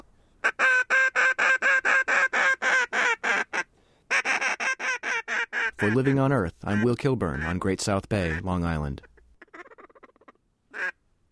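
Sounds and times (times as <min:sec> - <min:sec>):
duck call blown by a biologist on Great South Bay: 0:00.4 - 0:11.3
speech: 0:05.8 - 0:09.1.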